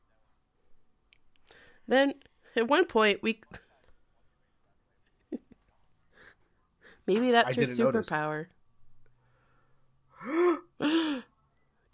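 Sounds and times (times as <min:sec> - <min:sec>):
speech: 0:01.8 - 0:03.6, 0:07.1 - 0:08.6, 0:10.2 - 0:11.3
person gasping: 0:10.2 - 0:11.3.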